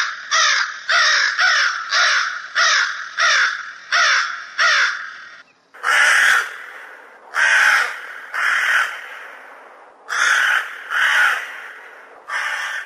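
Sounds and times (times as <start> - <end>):
crow giving rough caws: 0.0 - 12.8.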